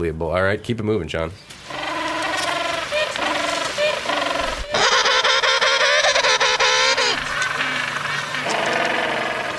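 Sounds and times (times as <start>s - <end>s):
speech: 0.0s - 1.8s
chorus of penguins braying: 1.7s - 9.5s.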